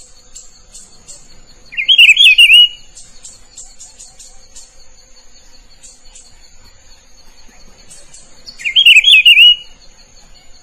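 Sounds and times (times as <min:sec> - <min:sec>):
soft steady high tone: 0:00.0 - 0:10.6
Rufous-browed peppershrike singing a phrase of slurred whistles: 0:01.7 - 0:02.8, 0:08.6 - 0:09.7.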